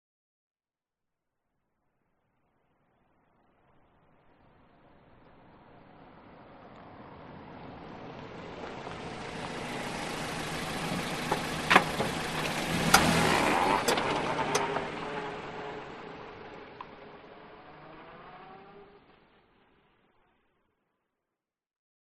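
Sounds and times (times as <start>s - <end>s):
car approaching slowly, stopping and reversing away on a road: 3.6s - 20.5s.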